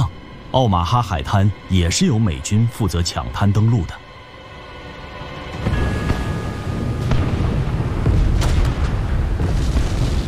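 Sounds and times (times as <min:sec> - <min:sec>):
speech: 0:00.5 - 0:04.0
explosion blasts from naval artillery bombardment: 0:05.6 - 0:10.2
naval artillery bombarding a beach: 0:07.0 - 0:10.2.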